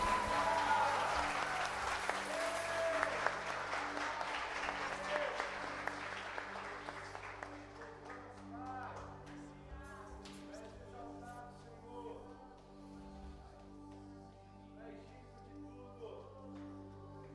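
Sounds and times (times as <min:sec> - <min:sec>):
whoops and cheers: 0:00.0 - 0:03.4
large crowd applauding: 0:00.0 - 0:09.6.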